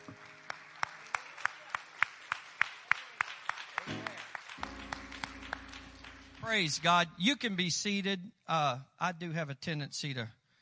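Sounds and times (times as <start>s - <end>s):
audience clapping hands in praise: 0.0s - 7.1s
speech: 6.5s - 10.4s.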